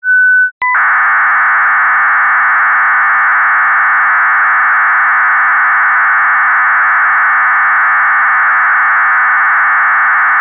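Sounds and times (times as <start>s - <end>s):
BPSK radio data signal via moon bounce: 0.6s - 10.3s.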